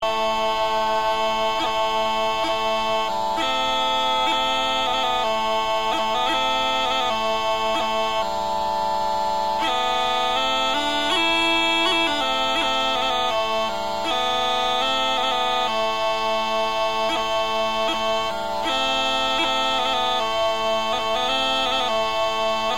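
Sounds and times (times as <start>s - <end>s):
weepipe melody: 0.0s - 22.7s.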